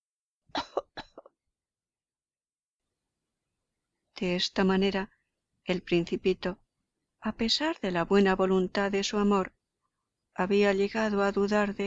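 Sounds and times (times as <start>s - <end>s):
person forcing deliberate harsh coughs: 0.6s - 1.3s
speech: 4.2s - 6.6s, 7.2s - 9.6s, 10.4s - 11.8s.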